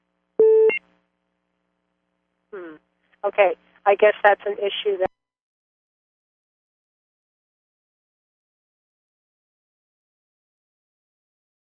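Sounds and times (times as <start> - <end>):
short electronic beep over a phone line: 0.4 - 0.8
speech: 2.5 - 5.1.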